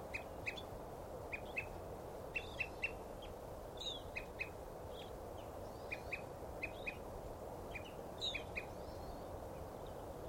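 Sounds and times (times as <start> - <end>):
soft constant background noise: 0.0 - 10.2
Evening Grosbeak calling with brief chirped notes: 0.1 - 0.7, 1.3 - 7.0, 7.7 - 10.2.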